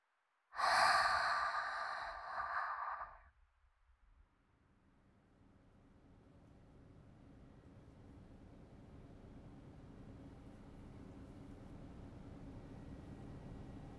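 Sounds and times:
faint quiet hiss: 0.6 - 3.2
slow exhale during a breathing-meditation relaxation exercise: 0.6 - 3.2.

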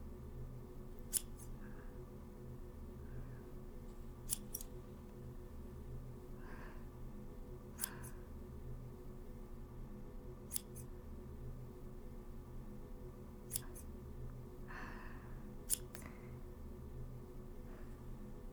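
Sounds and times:
low steady hum: 0.0 - 18.5
scissors snipping hair ends: 0.9 - 1.6, 3.8 - 5.2, 7.7 - 8.3, 10.5 - 10.9, 13.4 - 14.0, 15.6 - 16.2.

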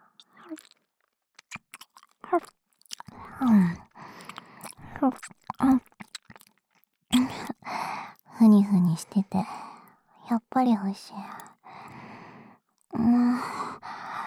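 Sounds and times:
speech: 0.2 - 0.8, 2.3 - 2.6, 3.2 - 3.8, 5.0 - 5.9, 7.7 - 9.7, 10.3 - 11.5
mouth nibbling on an earlobe: 0.2 - 8.3, 11.4 - 12.0.

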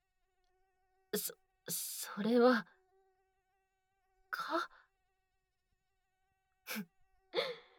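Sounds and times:
single mosquito whining after being let out of a bag: 0.5 - 4.8, 6.1 - 7.7
speech: 1.2 - 2.8, 4.3 - 4.8, 6.7 - 7.5
breathy sounds: 7.4 - 7.7.

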